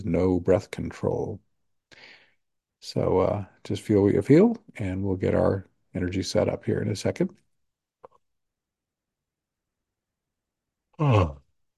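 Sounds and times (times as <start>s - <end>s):
speech: 0.0s - 2.2s, 2.8s - 7.4s, 11.0s - 11.4s
person yawning: 11.0s - 11.5s.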